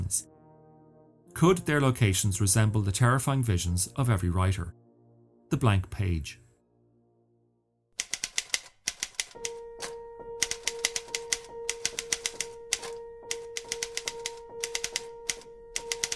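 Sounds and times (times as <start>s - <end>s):
speech: 0.1s - 0.3s, 1.4s - 4.8s, 5.5s - 6.4s
manual typewriter keys clattering: 8.0s - 16.1s.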